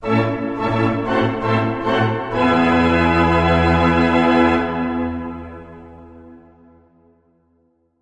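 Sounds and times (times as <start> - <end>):
organ playing a tenor fanfare: 0.0 - 6.4.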